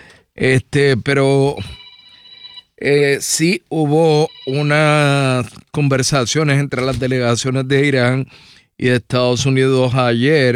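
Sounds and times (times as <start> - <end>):
speech: 0.4 - 1.8, 2.8 - 10.5
telephone ringing with a thin electronic tone: 1.5 - 2.8, 3.9 - 5.1.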